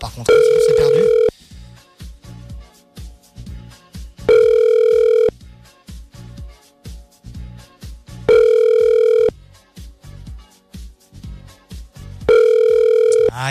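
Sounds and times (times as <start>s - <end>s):
soft rhythmic music: 0.0s - 13.4s
speech: 0.1s - 0.8s
telephone ringback tone on an outgoing call: 0.3s - 1.3s, 4.3s - 5.3s, 8.3s - 9.3s, 12.3s - 13.4s.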